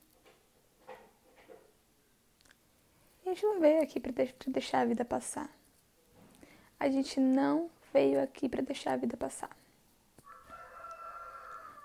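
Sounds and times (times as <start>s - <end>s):
faint noise: 0.0s - 11.8s
speech: 3.3s - 5.6s, 6.8s - 9.6s
rooster crowing: 10.2s - 11.8s.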